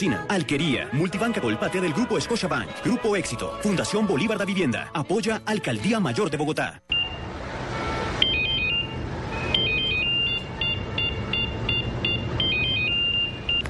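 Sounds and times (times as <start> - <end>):
speech: 0.0 - 7.0
mobile phone ringtone with repeating electronic melody: 8.2 - 13.6.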